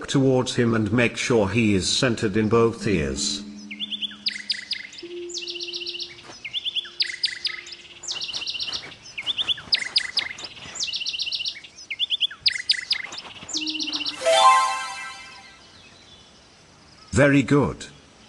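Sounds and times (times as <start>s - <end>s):
speech: 0.1s - 3.5s, 17.2s - 17.9s
bird chirping in an audio game: 2.8s - 17.2s
brief bright swoosh: 13.6s - 15.6s.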